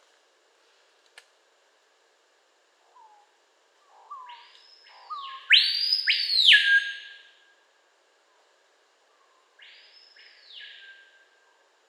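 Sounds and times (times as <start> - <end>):
screaming piha Lipaugus vociferans whistling call: 3.9 - 7.4, 9.6 - 11.2.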